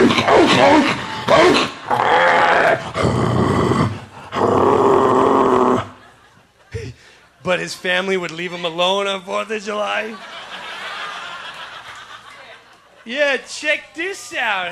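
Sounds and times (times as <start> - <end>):
German Shepherd dog growling and snarling: 0.0 - 5.9
laughter: 5.7 - 7.6, 9.7 - 14.0
speech: 7.6 - 10.4, 13.0 - 14.7.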